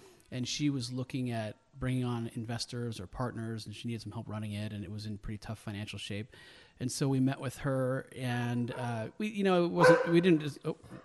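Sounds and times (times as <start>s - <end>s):
speech: 0.3s - 11.0s
dog barking and whining: 9.8s - 11.0s.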